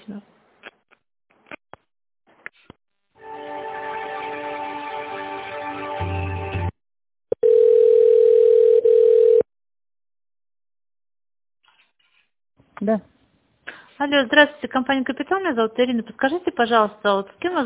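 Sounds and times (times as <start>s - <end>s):
telephone line clicks and beeps as a call is transferred: 7.3s - 9.4s
speech: 14.1s - 17.6s.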